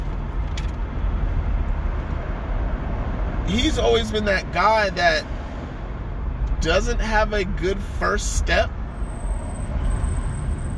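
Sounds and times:
road noise inside a moving car: 0:00.0 - 0:10.7
speech: 0:03.5 - 0:05.4, 0:06.6 - 0:08.8.

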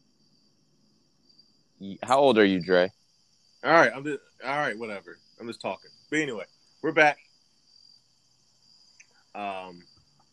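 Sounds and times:
crickets chirping: 0:00.0 - 0:10.3
human voice: 0:01.8 - 0:02.9, 0:03.6 - 0:07.2, 0:09.4 - 0:09.8
speech: 0:01.8 - 0:03.0, 0:03.6 - 0:07.2, 0:09.3 - 0:09.9.

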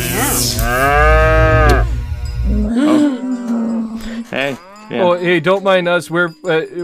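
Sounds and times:
cow mooing: 0:00.6 - 0:05.2
speech: 0:05.2 - 0:06.8.

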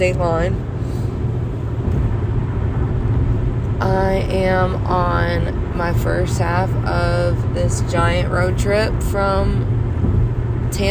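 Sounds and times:
speech: 0:00.0 - 0:00.7, 0:03.8 - 0:10.8
car driving over a bridge from Jacksonville Florida toward the Georgia state line: 0:00.0 - 0:10.8.

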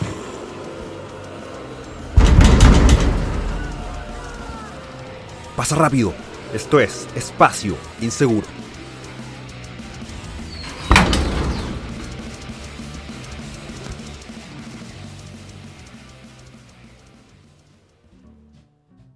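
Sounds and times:
single heavy door banging shut with thud: 0:02.0 - 0:04.4, 0:10.5 - 0:12.6
speech: 0:05.6 - 0:08.6.

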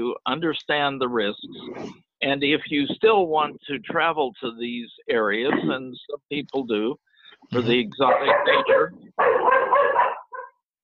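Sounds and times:
speech: 0:00.0 - 0:10.0
guard dog barking: 0:08.0 - 0:10.6.

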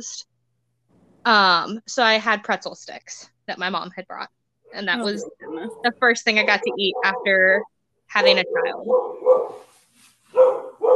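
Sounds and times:
speech: 0:00.0 - 0:00.3, 0:01.2 - 0:09.7
dog barking excitedly: 0:05.4 - 0:07.4, 0:08.2 - 0:09.7, 0:10.3 - 0:10.9.

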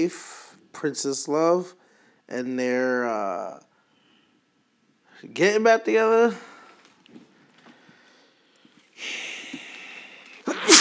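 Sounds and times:
speech: 0:00.0 - 0:03.7, 0:05.2 - 0:06.5
loud person sneezing: 0:09.0 - 0:10.7.

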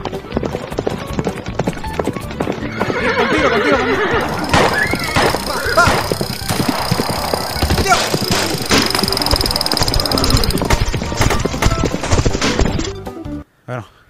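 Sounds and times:
galloping horse hoofbeats: 0:00.0 - 0:13.0
horse whinnying and neighing: 0:02.6 - 0:08.8.

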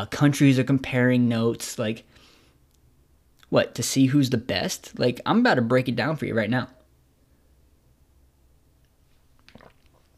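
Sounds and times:
speech: 0:00.0 - 0:02.2, 0:03.5 - 0:06.8
sipping a drink with a slurp: 0:09.4 - 0:10.1
swallowing: 0:09.4 - 0:10.1.

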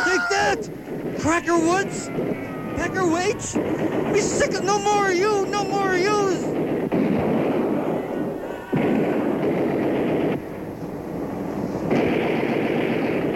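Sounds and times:
gunfire barrage: 0:00.0 - 0:13.3
speech: 0:00.5 - 0:06.6.

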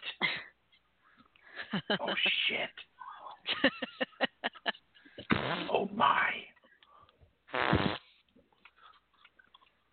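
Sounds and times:
speech: 0:01.7 - 0:04.0, 0:05.8 - 0:06.5
loud sputtering fart: 0:05.2 - 0:05.7, 0:07.5 - 0:08.2.

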